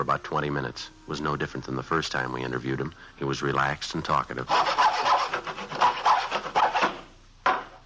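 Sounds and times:
speech: 0.0 - 4.9
hacksaw sawing plywood in a small garage workshop: 4.5 - 7.0.

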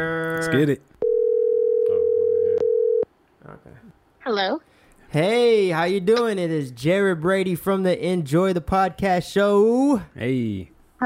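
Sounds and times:
speech: 0.0 - 0.9, 4.3 - 11.0
loud steady telephone dial tone: 1.0 - 3.0.

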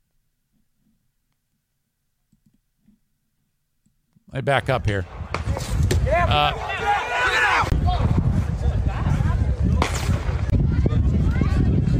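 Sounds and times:
speech: 4.3 - 7.0
crowd noise at a youth baseball game: 4.3 - 11.9
gunshots at a youth baseball game: 9.7 - 10.5.

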